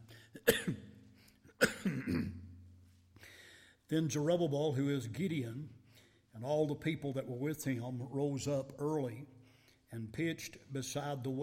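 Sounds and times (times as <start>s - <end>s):
person clearing throat: 0.3s - 1.0s, 1.6s - 2.6s
person coughing: 0.3s - 2.6s
speech: 3.9s - 5.8s, 6.4s - 11.4s.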